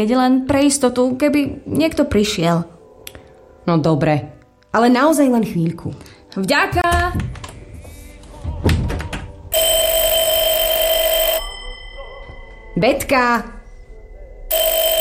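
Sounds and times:
speech: 0.0s - 2.7s, 3.7s - 6.8s, 12.8s - 13.6s
telephone bell ringing loudly: 9.5s - 12.8s, 14.5s - 14.9s.

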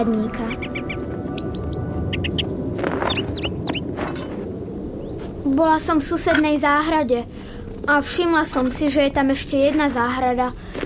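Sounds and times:
speech: 0.0s - 2.4s, 5.4s - 10.8s
robin singing in a treetop: 0.0s - 3.9s
steady hiss of outdoor noise: 0.0s - 10.8s.

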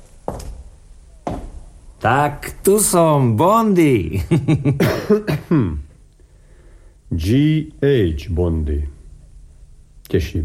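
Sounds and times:
speech: 2.0s - 5.8s, 7.1s - 9.0s, 10.1s - 10.4s
person coughing: 4.8s - 5.9s.

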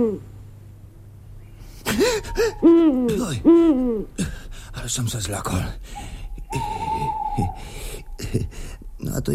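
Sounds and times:
owl hooting: 0.0s - 0.3s, 1.4s - 4.2s, 5.9s - 9.0s
speech: 0.0s - 0.3s, 2.0s - 6.8s, 8.3s - 9.3s
low rumbling background: 0.0s - 9.3s.

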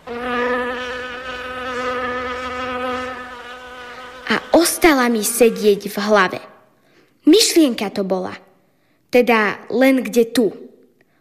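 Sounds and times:
fly buzzing: 0.0s - 6.3s
speech: 4.6s - 6.5s, 7.3s - 8.4s, 9.1s - 10.6s.

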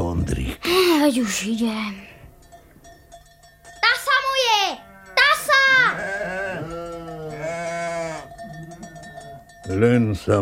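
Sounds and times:
speech: 0.2s - 2.1s, 9.7s - 10.4s
flock of sheep bleating: 4.8s - 9.5s.

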